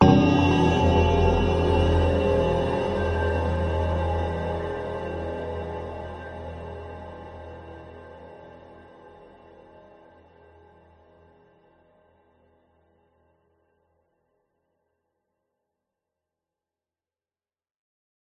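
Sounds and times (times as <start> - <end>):
dark discordant pads: 0.0 - 9.0
horror hit drone with long decay: 0.0 - 11.0.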